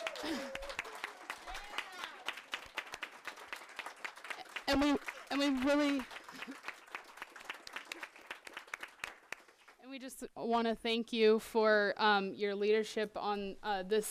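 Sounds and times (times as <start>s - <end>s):
people cheering: 0.0s - 8.8s
room full of people applauding: 0.0s - 9.8s
speech: 0.2s - 0.5s, 4.7s - 6.6s, 10.0s - 14.0s.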